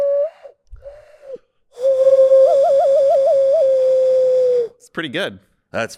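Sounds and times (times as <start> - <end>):
person whistling an owl hoot imitation: 0.0 - 0.6, 1.2 - 4.8
speech: 5.0 - 5.9.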